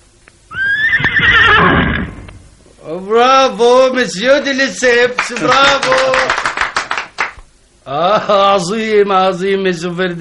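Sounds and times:
horse neighing in an equestrian jumping display: 0.5s - 2.4s
speech: 2.9s - 6.4s, 7.9s - 10.2s.

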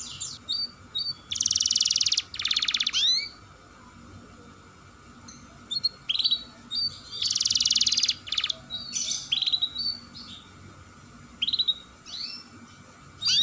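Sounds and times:
Atlantic canary singing vigorously with a long rolling trill: 0.0s - 3.4s, 5.6s - 10.6s, 11.3s - 13.4s.

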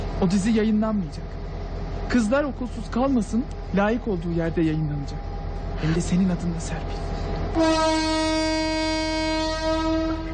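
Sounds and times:
speech: 0.2s - 1.4s, 2.1s - 8.4s
train horn blaring as a train departs: 7.5s - 10.3s.

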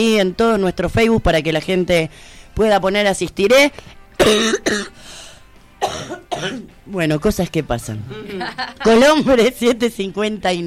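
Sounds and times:
speech: 0.0s - 5.2s, 5.8s - 10.6s
person coughing harshly in a coughing fit: 4.2s - 5.0s, 5.8s - 6.7s
laughter: 8.1s - 9.4s.

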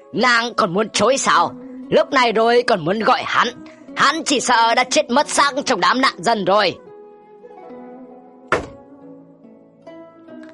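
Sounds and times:
soft sustained music: 0.0s - 10.5s
speech: 0.1s - 6.8s
main door kicked open: 8.5s - 8.9s.

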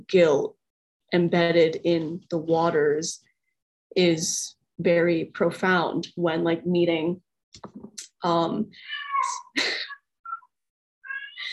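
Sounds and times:
speech: 0.0s - 3.3s, 3.9s - 9.9s
cat screaming and yowling inside a house: 8.8s - 11.5s.

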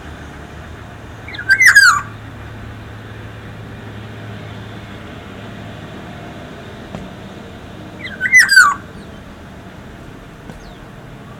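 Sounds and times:
black-naped oriole singing a rich whistle: 1.3s - 2.1s, 8.0s - 11.3s
soft background noise: 3.9s - 11.3s.

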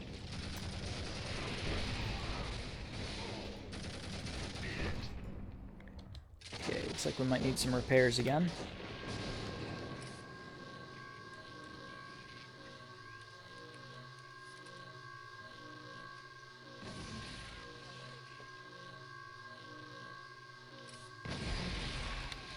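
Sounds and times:
distant video-game explosions: 0.0s - 12.6s
steady mechanical hum with a high whine: 0.0s - 22.5s
speech: 7.0s - 8.8s.

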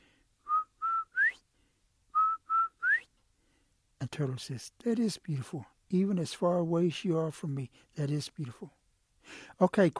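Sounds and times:
human whistling imitating a quail's call: 0.4s - 1.4s, 2.1s - 3.1s
speech: 4.2s - 9.9s.

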